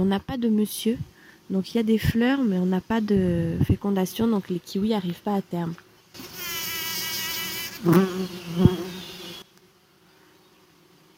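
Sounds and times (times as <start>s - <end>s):
speech: 0.0s - 6.3s, 7.8s - 9.0s
many bees buzzing among flowering kiwi vine blossoms: 6.1s - 11.1s.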